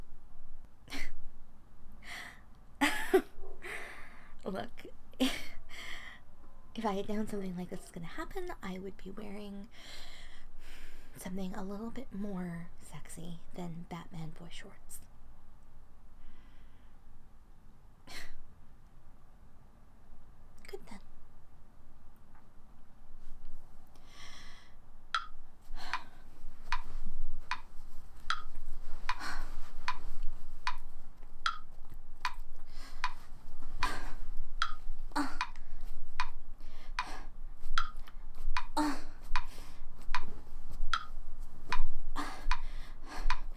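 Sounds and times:
low hum: 0:00.0 - 0:43.5
speech: 0:04.5 - 0:05.5, 0:06.8 - 0:10.1, 0:11.2 - 0:15.0
clock ticking: 0:25.1 - 0:26.1, 0:27.5 - 0:29.2, 0:30.6 - 0:32.4, 0:34.6 - 0:34.8, 0:35.4 - 0:35.6, 0:36.2 - 0:36.4, 0:37.0 - 0:39.5, 0:40.1 - 0:40.3, 0:40.9 - 0:41.9, 0:42.5 - 0:43.5.

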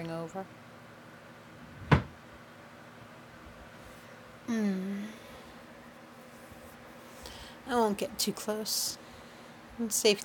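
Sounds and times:
speech: 0:00.0 - 0:00.6, 0:04.5 - 0:05.2, 0:07.7 - 0:09.0, 0:09.8 - 0:10.2
door pushed shut with a solid thump: 0:01.8 - 0:02.2.

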